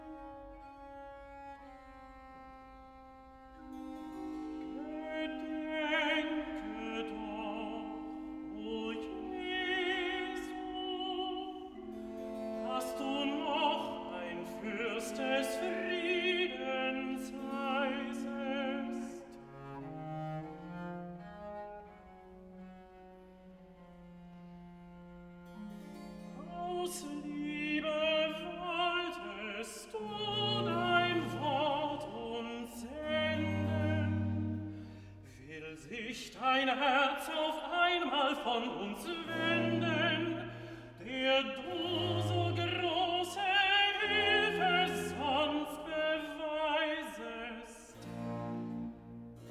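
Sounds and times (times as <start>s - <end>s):
tenor singing recitative: 3.7s - 21.2s, 26.1s - 49.2s.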